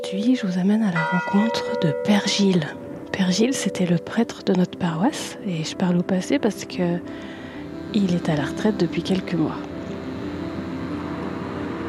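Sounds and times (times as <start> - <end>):
speech: 0.1 - 9.7
car engine and tyre noise rumble: 7.4 - 11.8
car passing by: 9.5 - 11.8.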